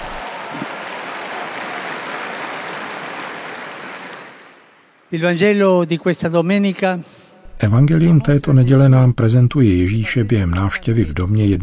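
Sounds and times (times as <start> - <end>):
crowd applauding: 0.0 - 5.1
speech: 5.1 - 11.6.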